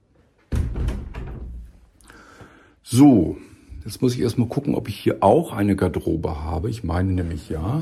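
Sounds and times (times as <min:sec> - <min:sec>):
door opening with a sudden heavy rattle: 0:00.5 - 0:01.8
speech: 0:02.9 - 0:07.8.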